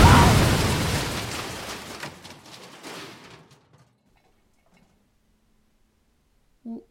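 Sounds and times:
Rhodesian Ravager rose exploding when held too tightly: 0.0s - 2.2s.

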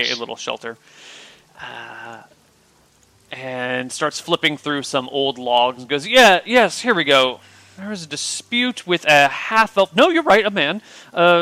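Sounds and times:
short voiced tone: 0.0s - 0.3s
speech: 0.0s - 2.4s, 3.3s - 11.4s
soft steady rain: 0.0s - 11.4s.

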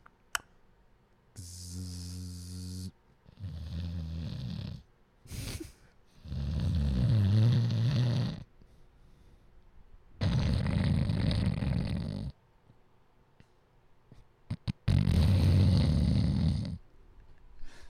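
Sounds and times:
loud rasping human snoring: 1.4s - 4.8s, 6.2s - 8.4s, 10.2s - 12.4s, 14.6s - 16.8s.

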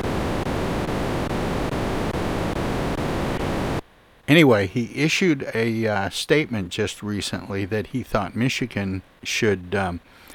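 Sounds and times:
steady broadband static hiss on an audio line: 0.0s - 6.3s
speech: 4.3s - 10.1s.

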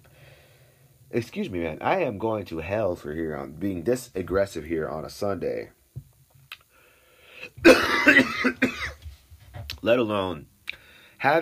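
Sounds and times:
speech: 1.1s - 5.8s, 8.4s - 8.8s, 9.8s - 10.5s
harsh rasping cough: 7.4s - 9.0s.

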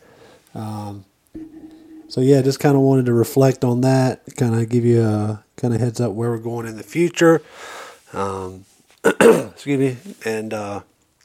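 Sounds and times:
speech: 0.6s - 1.4s, 2.1s - 10.9s
person clearing throat: 9.0s - 9.6s.

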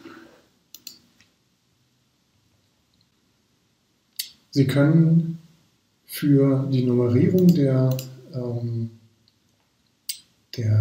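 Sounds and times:
faint hiss: 0.0s - 10.7s
quiet sharp computer mouse clicks: 0.7s - 1.0s
speech: 4.5s - 5.4s, 6.1s - 9.0s, 10.6s - 10.7s.

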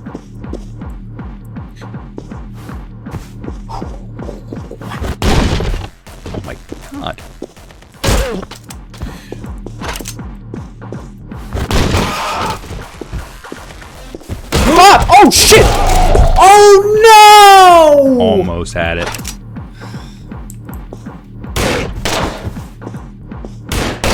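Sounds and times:
gunshots in a video game: 5.0s - 8.5s, 11.5s - 16.6s, 21.6s - 22.6s, 23.7s - 24.1s
speech: 6.5s - 7.3s, 15.2s - 19.2s.

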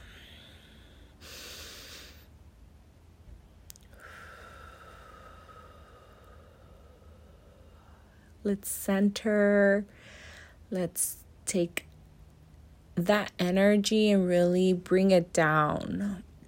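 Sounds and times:
quick deep breath: 0.0s - 2.3s, 3.9s - 8.4s, 9.9s - 10.7s
speech: 8.5s - 10.0s, 10.7s - 11.9s, 13.0s - 16.3s.

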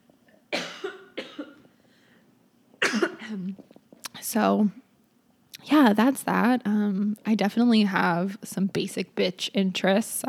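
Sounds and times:
person coughing: 0.5s - 1.7s, 2.8s - 3.6s
speech: 2.9s - 3.7s, 4.3s - 4.8s, 5.6s - 10.2s.

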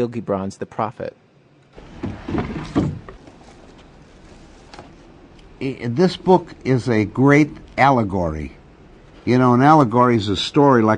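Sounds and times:
speech: 0.0s - 1.2s, 2.3s - 3.0s, 5.6s - 8.6s, 9.2s - 10.9s
wooden desk drawer scraping and thumping open: 1.8s - 3.6s
faint shuffling: 1.8s - 7.8s.

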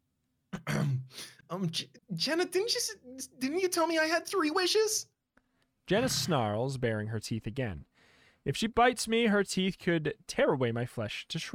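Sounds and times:
throat clearing: 0.5s - 1.4s
speech: 0.8s - 5.1s, 5.9s - 11.5s.

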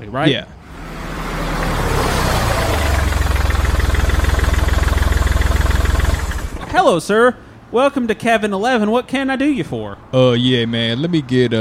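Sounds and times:
speech: 0.1s - 0.6s, 6.7s - 11.5s
car engine starting up and idling: 0.5s - 6.9s.

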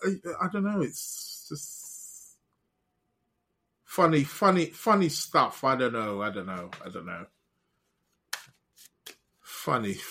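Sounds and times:
speech: 0.0s - 1.8s, 4.0s - 7.4s, 9.6s - 10.0s
tarot cards being shuffled by hand: 8.0s - 9.4s.

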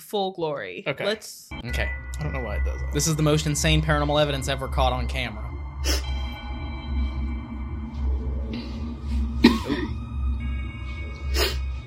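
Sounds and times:
speech: 0.1s - 6.1s
steady low hum: 1.6s - 11.8s
person coughing to alert someone: 9.4s - 10.0s.

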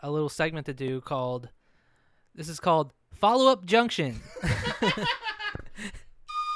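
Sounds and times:
speech: 0.0s - 1.6s, 2.4s - 6.0s
laughter and chuckling: 4.2s - 6.0s.

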